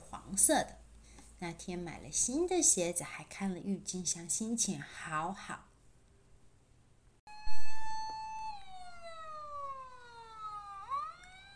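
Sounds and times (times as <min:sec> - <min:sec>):
speech: 0:00.1 - 0:00.8, 0:01.4 - 0:05.7
siren of two big fire engines wailing outside a house: 0:07.3 - 0:11.5.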